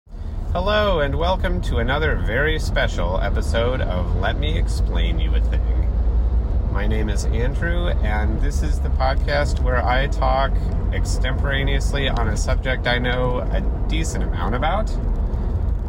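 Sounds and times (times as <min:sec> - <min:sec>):
engine and tire drone inside a moving car: 0:00.1 - 0:15.8
speech: 0:00.5 - 0:05.9, 0:06.8 - 0:15.2.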